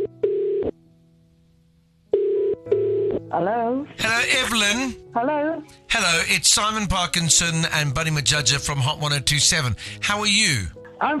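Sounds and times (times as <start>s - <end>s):
telephone call ringing in the earpiece: 0.0s - 0.7s, 2.1s - 3.2s
speech: 3.3s - 11.1s.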